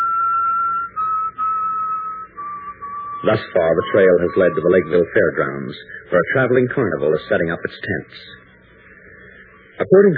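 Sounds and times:
person whistling a mournful funeral march: 0.0 - 6.1
low hum: 0.0 - 10.1
speech: 3.2 - 8.4, 9.8 - 10.1.

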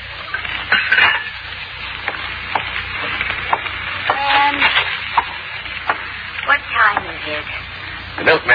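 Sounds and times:
steady low hiss: 0.0 - 8.5
pots and pans clattering in a kitchen: 0.2 - 6.2
speech: 8.2 - 8.5.

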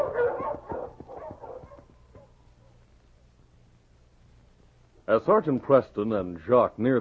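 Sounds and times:
sled dogs barking and yipping excitedly: 0.0 - 2.8
speech: 5.1 - 6.9.

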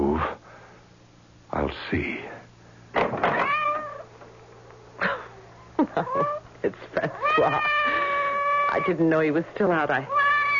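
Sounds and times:
low steady hum: 0.0 - 10.5
speech: 1.9 - 2.4, 8.8 - 10.2
cat meowing: 3.3 - 4.1, 7.2 - 9.0, 10.1 - 10.5.

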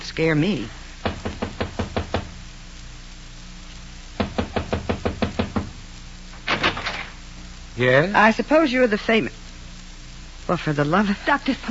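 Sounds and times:
speech: 0.2 - 0.8, 7.8 - 9.4, 10.5 - 11.6
knocking on a door: 1.0 - 2.4, 4.2 - 5.8.

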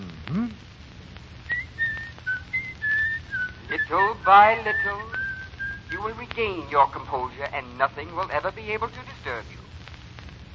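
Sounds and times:
faint hiss: 0.0 - 10.5
person whistling a short phrase: 1.5 - 6.0
speech: 3.9 - 5.2, 5.9 - 9.6.

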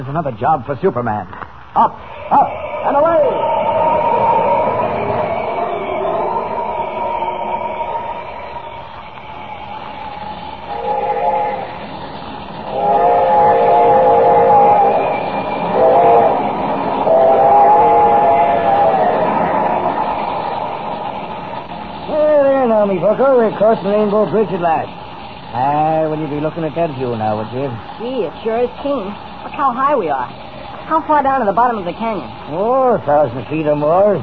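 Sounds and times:
speech: 0.0 - 3.6, 23.2 - 34.2
train rolling on rails: 1.8 - 34.2
train horn blasts: 6.3 - 20.4.

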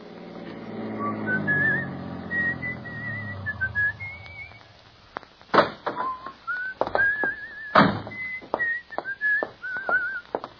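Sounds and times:
man whistling a light cheerful melody: 1.0 - 4.6, 6.0 - 10.2.

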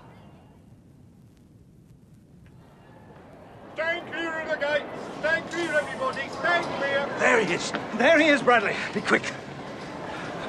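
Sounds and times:
speech: 3.8 - 9.4
train rumble and hiss at a station platform: 5.0 - 6.3.

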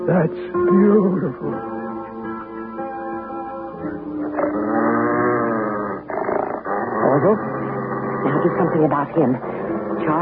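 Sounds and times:
speech: 0.1 - 1.7, 7.2 - 7.5, 8.5 - 10.2
dog growling: 3.8 - 10.2.

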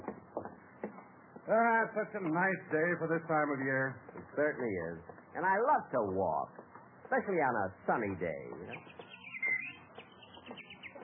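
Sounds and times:
speech: 1.5 - 8.6
bird chirping on a lawn on a sunny day: 8.3 - 11.0.

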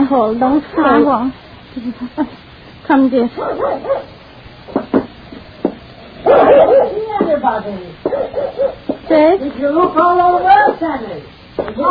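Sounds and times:
speech: 0.1 - 4.2, 6.2 - 11.8
dog giving short sharp barks: 3.4 - 4.2, 6.2 - 7.1, 8.0 - 8.9.

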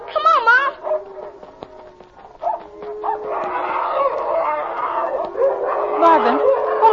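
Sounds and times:
German shepherd and large dog fighting, snarling, barking and howling: 0.0 - 6.9.

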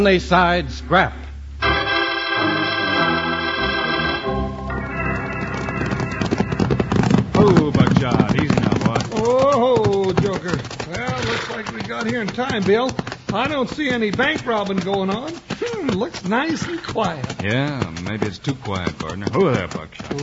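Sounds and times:
speech: 0.0 - 1.2, 7.4 - 20.2
music: 1.6 - 7.7
horses' hooves clip-clopping at a walk: 1.8 - 20.2
horse whinny: 10.9 - 11.7.

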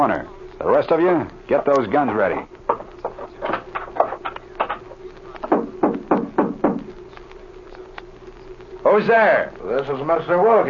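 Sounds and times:
speech: 0.0 - 2.6, 9.0 - 10.6
faint hum: 0.0 - 10.6
knocking on a wooden front door: 5.5 - 6.9.

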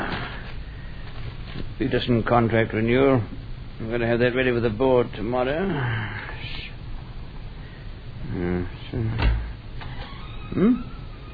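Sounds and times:
speech: 1.8 - 6.6, 8.4 - 9.3, 10.6 - 10.8
broken door creaking and squealing as it swings: 9.0 - 11.3.

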